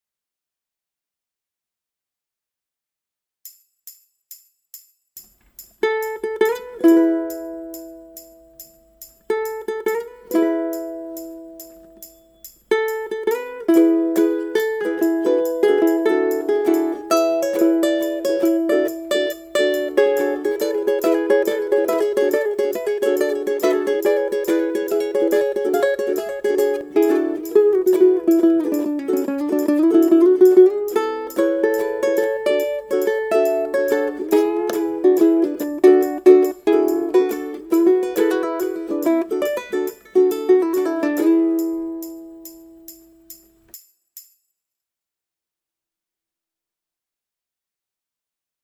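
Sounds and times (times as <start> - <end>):
ukulele solo: 5.8 - 43.4.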